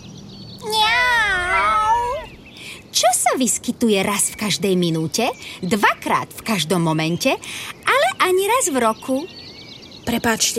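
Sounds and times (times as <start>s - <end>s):
cat meowing: 0.6s - 2.3s
speech: 3.4s - 9.4s, 10.1s - 10.5s.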